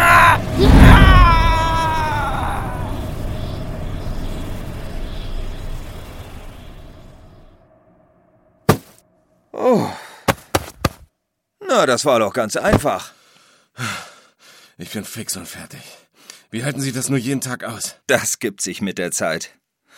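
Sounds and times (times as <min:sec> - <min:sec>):
ghost's loud wavering eerie scream: 0:00.0 - 0:04.2
speech: 0:11.8 - 0:13.2, 0:13.8 - 0:14.1, 0:14.8 - 0:19.6.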